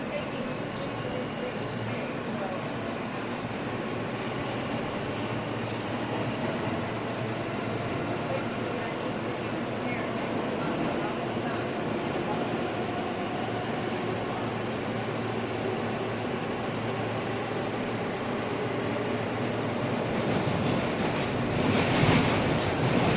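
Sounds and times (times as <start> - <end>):
public subway interior ambience: 0.0 - 23.1.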